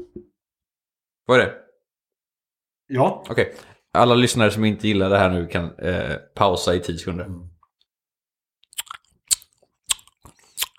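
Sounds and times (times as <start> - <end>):
speech: 1.3 - 1.6, 2.9 - 7.5
loud chewing of grapes into a microphone: 8.6 - 10.7.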